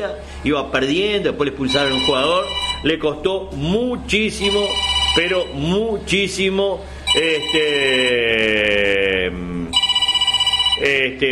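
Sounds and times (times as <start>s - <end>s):
speech: 0.0s - 9.8s, 10.8s - 11.3s
telephone ringing in a radio studio during a live show: 1.6s - 3.0s, 4.3s - 5.8s, 7.0s - 8.8s, 9.7s - 11.3s.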